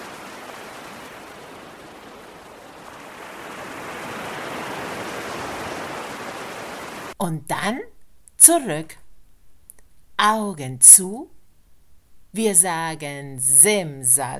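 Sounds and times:
ocean water wash like surf: 0.0s - 7.2s
speech: 7.2s - 9.0s, 10.2s - 11.4s, 12.4s - 14.3s.

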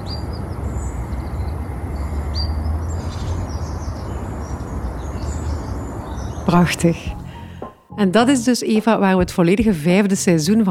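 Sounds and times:
small birds chirping and twittering outdoors by water: 0.0s - 7.5s
speech: 6.6s - 7.2s, 8.0s - 10.7s.

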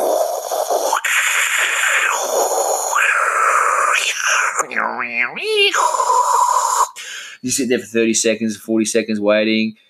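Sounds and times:
voice imitating dial-up modem connecting to the internet: 0.9s - 7.7s
speech: 4.7s - 9.8s.

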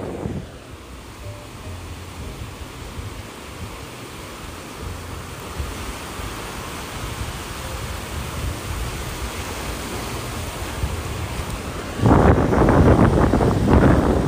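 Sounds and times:
ocean waves breaking on shore: 0.0s - 14.2s.

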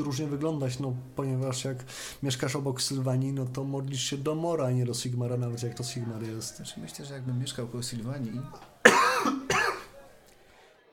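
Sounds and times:
speech: 0.0s - 8.7s
harsh coughs: 8.8s - 9.9s.

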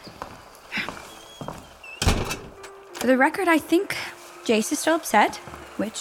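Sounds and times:
soft irregular footsteps of a man walking away on a hard floor: 0.0s - 1.8s, 5.3s - 5.8s
speech: 3.0s - 5.9s.

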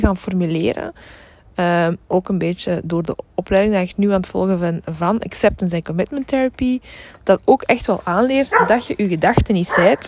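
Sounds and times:
speech: 0.0s - 10.0s
dog barking: 8.5s - 9.0s, 9.7s - 10.0s.

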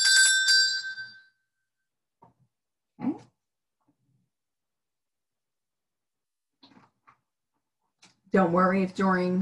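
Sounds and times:
handheld bell ringing: 0.0s - 1.4s
speech: 8.3s - 9.4s.

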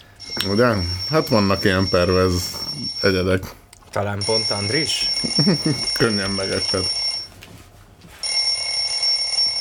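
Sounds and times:
high electronic ringtone of an incoming phone call: 0.2s - 3.2s, 4.2s - 7.3s, 8.2s - 9.5s
speech: 0.4s - 7.0s
laughter: 5.2s - 6.2s.

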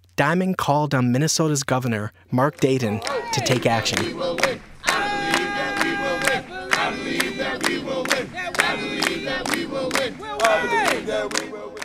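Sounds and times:
speech: 0.2s - 4.6s
large protest crowd chanting in unison outside a governor's mansion: 2.6s - 11.8s.

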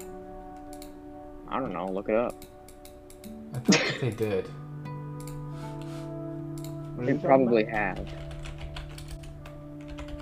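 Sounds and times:
speech: 1.5s - 2.5s, 3.2s - 4.6s, 7.0s - 8.2s
typing on a computer keyboard: 8.0s - 10.1s.

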